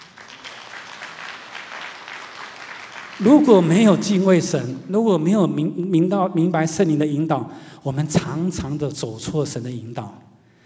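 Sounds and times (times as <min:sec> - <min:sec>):
large crowd applauding: 0:00.0 - 0:04.2
speech: 0:03.2 - 0:10.3.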